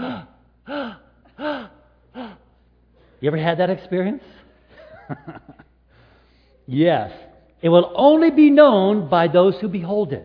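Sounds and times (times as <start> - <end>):
person imitating sharp awed inhaling gasps: 0.0 - 2.5
speech: 3.2 - 4.4, 5.1 - 5.6, 6.7 - 10.2
laughter: 4.7 - 5.8.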